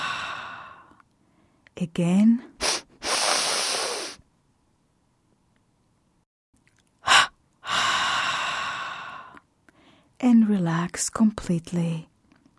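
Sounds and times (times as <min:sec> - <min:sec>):
deep breathing during a body-tensing relaxation exercise: 0:00.0 - 0:01.6, 0:07.0 - 0:10.1
speech: 0:01.8 - 0:02.6, 0:10.5 - 0:12.1.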